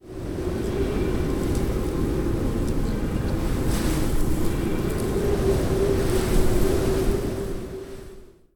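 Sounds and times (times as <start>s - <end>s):
wind in a lobby: 0.0s - 8.5s.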